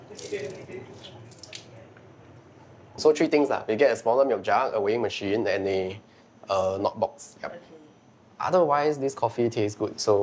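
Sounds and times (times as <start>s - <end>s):
cups being washed up under a running tap in a sink: 0.0s - 1.7s
water running from a tap into a sink: 0.2s - 0.6s
speech: 0.2s - 1.3s, 3.0s - 7.8s, 8.4s - 10.2s.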